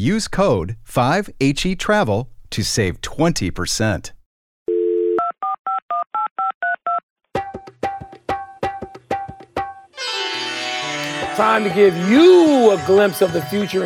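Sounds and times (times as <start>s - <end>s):
speech: 0.0s - 4.2s, 11.4s - 13.8s
telephone dial tone: 4.7s - 7.0s.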